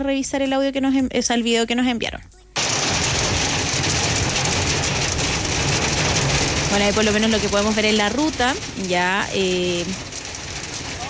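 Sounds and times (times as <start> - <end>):
speech: 0.0 - 2.4, 6.8 - 10.1
hail striking hard surfaces: 2.6 - 11.0.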